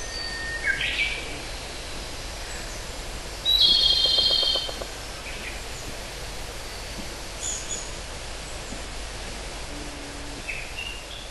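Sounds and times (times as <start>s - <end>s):
steady background hiss: 0.0s - 11.3s
pygmy woodpecker giving a harsh, buzzy call: 3.6s - 4.9s.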